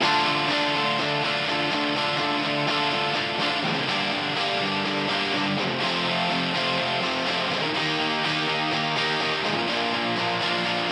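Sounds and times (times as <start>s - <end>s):
guitar: 0.0s - 10.9s.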